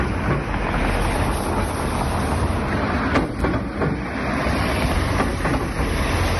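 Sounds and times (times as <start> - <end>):
cars running over a steel road plate with metallic bangs: 0.0 - 1.2, 2.7 - 6.3
constant roar of passing traffic: 0.0 - 6.3.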